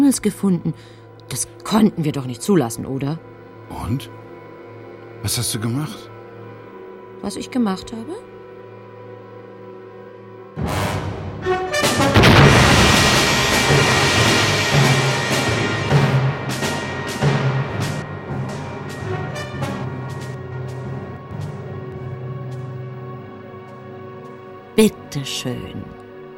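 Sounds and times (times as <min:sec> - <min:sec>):
speech: 0:00.1 - 0:04.2, 0:05.2 - 0:06.1, 0:07.2 - 0:08.3, 0:24.8 - 0:26.0
meteorite impact explosion sound effect: 0:10.6 - 0:18.5.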